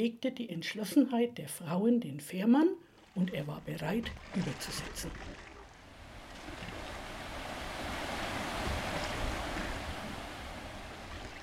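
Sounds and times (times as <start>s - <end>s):
speech: 0.0s - 5.4s
wild rushing river water: 3.0s - 11.4s
gusty wind: 5.7s - 11.4s.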